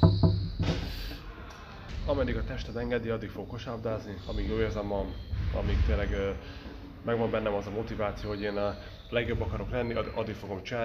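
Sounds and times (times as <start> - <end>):
dull knocks on wood: 0.0 - 0.9
speech: 2.1 - 10.8.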